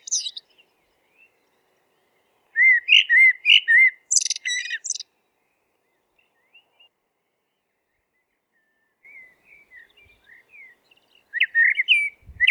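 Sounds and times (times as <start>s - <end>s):
Eurasian blackbird singing low fluted whistles and squeaky twitter: 0.0s - 5.0s, 9.1s - 12.4s.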